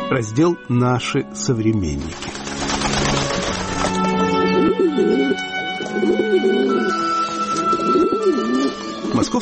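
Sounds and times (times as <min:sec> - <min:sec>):
speech: 0:00.1 - 0:02.9, 0:04.7 - 0:07.1, 0:07.9 - 0:09.4
pigeons cooing: 0:02.9 - 0:09.4.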